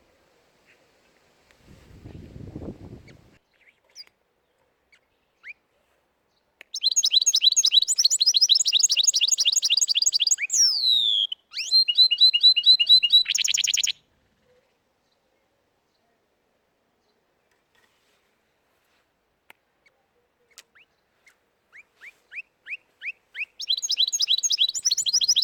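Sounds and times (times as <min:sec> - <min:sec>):
canary singing: 0:06.7 - 0:14.0, 0:21.7 - 0:25.4.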